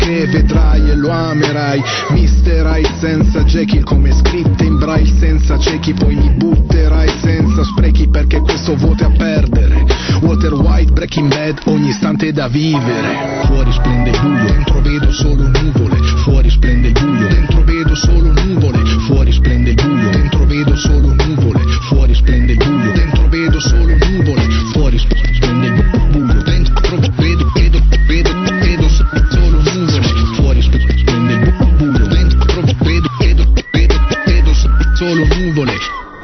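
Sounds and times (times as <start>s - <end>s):
whistled melody: 0.0s - 12.0s, 12.7s - 36.2s
loud dense drum and bass track with deep bass: 0.0s - 12.7s, 13.4s - 36.2s
speech: 0.0s - 22.8s
bell-like tones: 12.7s - 15.4s.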